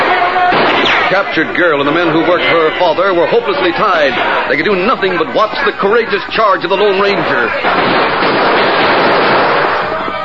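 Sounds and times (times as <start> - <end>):
gunshots in a radio drama shootout: 0.5 - 1.2, 7.5 - 10.0
speech: 1.1 - 8.5.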